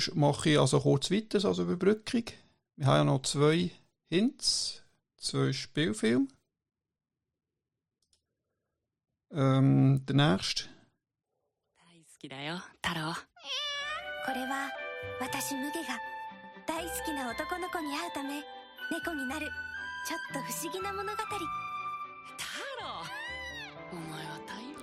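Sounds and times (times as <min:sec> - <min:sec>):
speech: 0:00.0 - 0:06.4, 0:09.3 - 0:10.8, 0:12.2 - 0:13.7, 0:14.3 - 0:21.6
cat meowing with long wavering cries: 0:13.4 - 0:14.2.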